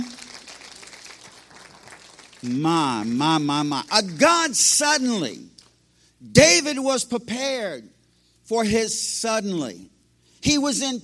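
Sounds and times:
crowd clapping and applauding: 0.0 - 4.9
speech: 2.4 - 5.5, 6.3 - 7.9, 8.5 - 11.0.

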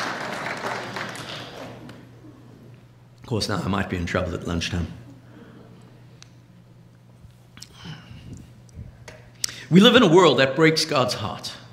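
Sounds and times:
roomful of people applauding: 0.0 - 2.0
speech: 3.3 - 5.0, 9.7 - 11.6.

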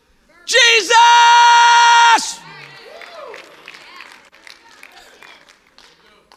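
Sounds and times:
scattered crowd noise: 0.0 - 6.3
person shouting: 0.5 - 2.4.

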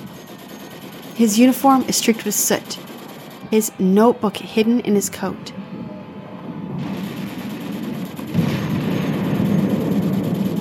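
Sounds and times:
speech: 1.2 - 2.9, 3.5 - 5.6
battle explosions: 6.8 - 10.5
cannon fire in battle: 6.8 - 10.5.

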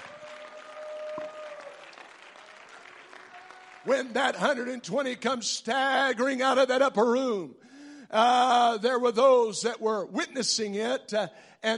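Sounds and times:
audience clapping hands in praise to God: 0.0 - 4.8
speech: 3.8 - 11.7.

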